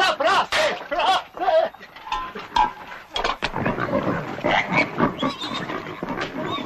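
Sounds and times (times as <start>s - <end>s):
laughter: 0.1s - 2.5s
Mangalica pigs grunting and squealing at the Zasavica nature reserve: 0.7s - 6.6s.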